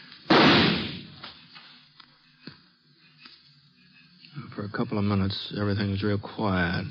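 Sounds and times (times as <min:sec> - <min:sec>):
gunshot cracks ringing off rock walls: 0:00.2 - 0:01.3
loud gunshot echoing in a canyon: 0:00.3 - 0:01.2
speech: 0:04.6 - 0:06.8.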